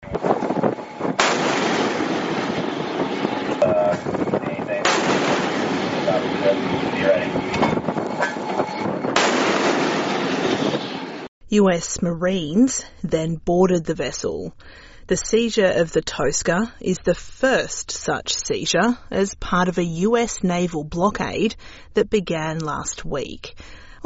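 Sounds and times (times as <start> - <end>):
engine noise: 0.0 - 11.3
wind: 0.0 - 23.5
5-inch MK-45 naval gun on a US Navy destroyer firing: 0.1 - 7.7, 9.1 - 11.3
speech: 11.5 - 24.0.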